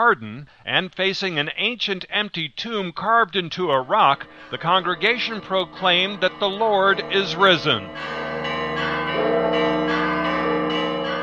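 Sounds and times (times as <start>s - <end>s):
speech: 0.0s - 9.6s
church bells of the Church of the Holy Sepulchre in Jerusalem ringing for Easter Mass: 3.8s - 11.2s.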